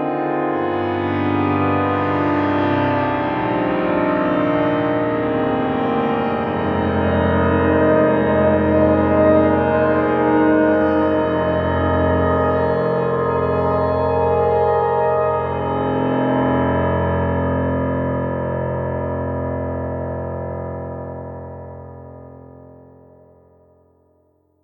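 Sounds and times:
nostalgia synth pad: 0:00.1 - 0:21.2
Pearl concert grand piano: 0:03.3 - 0:17.4.

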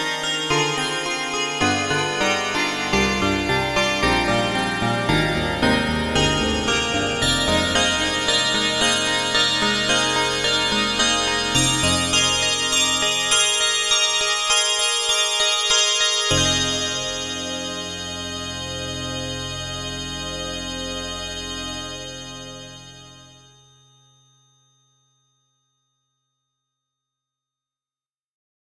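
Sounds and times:
glass piano: 0:00.1 - 0:22.9.

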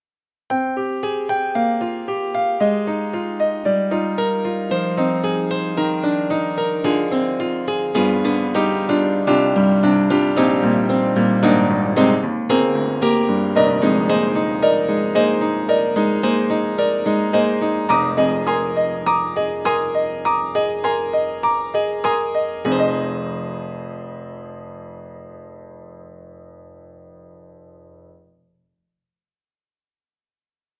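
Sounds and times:
upright piano walking line played close: 0:01.3 - 0:25.2.

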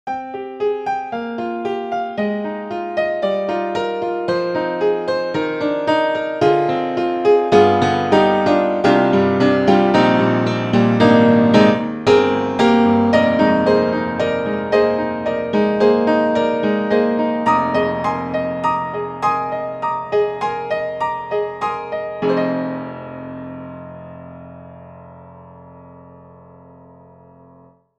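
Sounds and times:
modern upright piano: 0:00.1 - 0:27.9.

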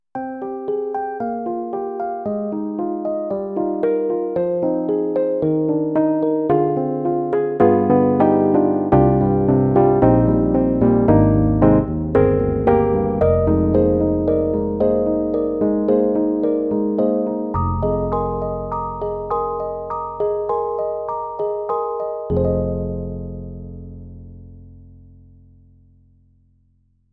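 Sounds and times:
soft Rhodes electric piano on an EDIROL SD-90: 0:00.2 - 0:25.4.

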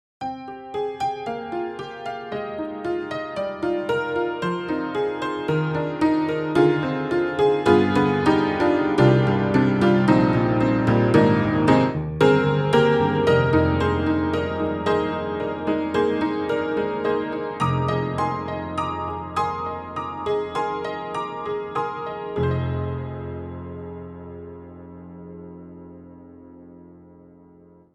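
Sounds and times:
barroom upright piano: 0:00.2 - 0:27.9.

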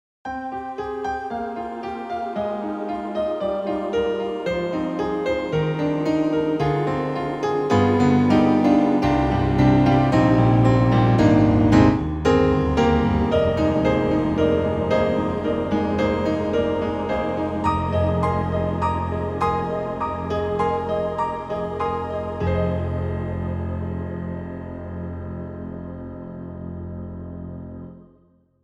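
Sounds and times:
synthesizer piano: 0:00.3 - 0:28.6
synthesizer ooh choir: 0:00.4 - 0:11.7, 0:12.8 - 0:24.3.

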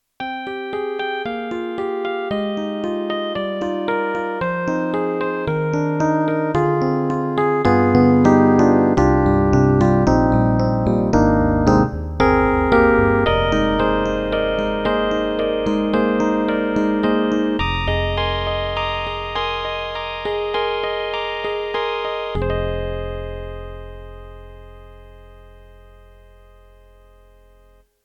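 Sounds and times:
synthesized hard electric piano from a tone module: 0:00.2 - 0:27.2.

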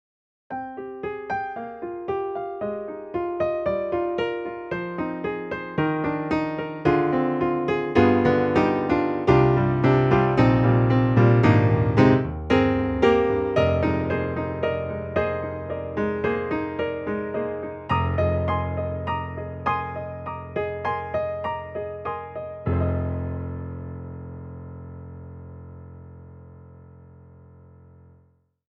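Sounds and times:
soft piano: 0:00.5 - 0:28.3.

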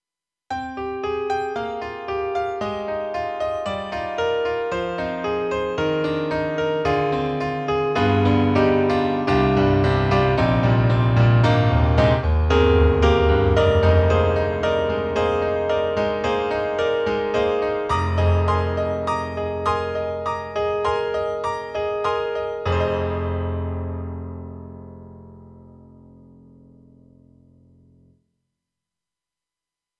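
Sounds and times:
bright piano on KORG M3: 0:00.5 - 0:28.2.

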